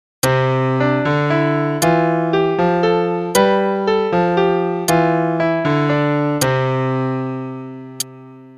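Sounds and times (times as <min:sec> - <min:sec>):
polyrhythm for right hand and left hand: 0:00.2 - 0:06.8.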